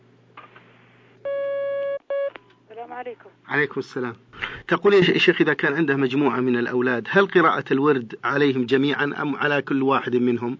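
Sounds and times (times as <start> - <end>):
faint low hum: 0.0 - 10.5
electronic telephone beeps as a call connects: 1.3 - 2.5
speech: 3.0 - 10.5.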